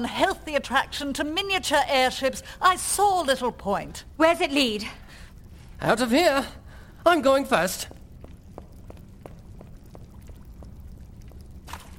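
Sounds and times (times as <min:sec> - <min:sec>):
speech: 0:00.0 - 0:05.2, 0:05.8 - 0:08.0
small water splashes: 0:07.5 - 0:11.9.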